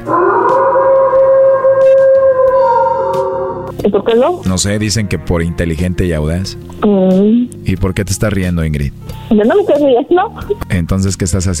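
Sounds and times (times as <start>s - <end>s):
wolf howl sound effect: 0.0s - 3.8s
speech: 3.8s - 11.5s.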